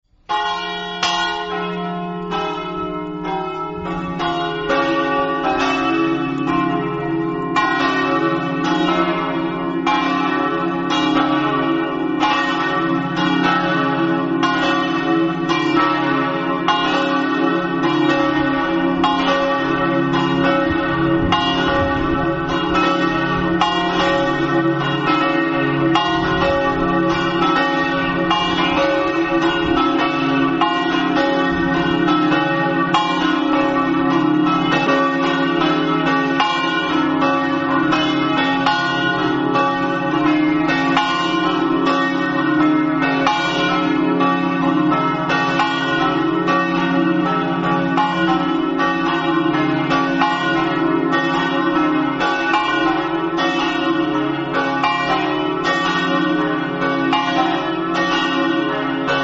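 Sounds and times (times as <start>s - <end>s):
bells: 0.0s - 59.2s.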